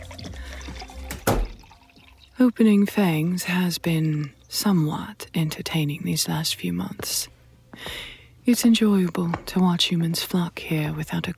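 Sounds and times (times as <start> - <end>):
drink trickling from a crystal decanter: 0.0 - 2.5
speech: 2.4 - 11.3.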